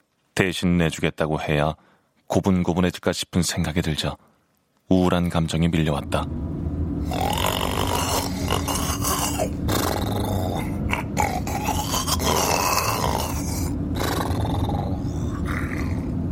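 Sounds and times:
speech: 0.4s - 4.3s, 4.9s - 7.4s
man snoring: 7.0s - 16.3s.

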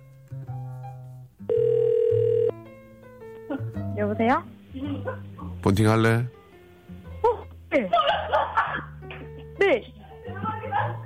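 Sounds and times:
soft tonal music: 0.0s - 11.0s
electronic telephone line tone as a live on-air call is connected: 1.5s - 2.6s
speech: 4.1s - 6.4s
laughter: 7.8s - 9.5s, 10.1s - 11.0s.

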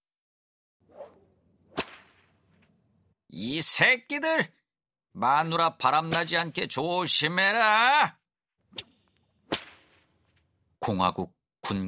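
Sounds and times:
whip crack: 1.0s - 2.8s, 8.7s - 10.4s
speech: 3.3s - 4.6s, 5.2s - 8.9s, 10.8s - 11.8s.

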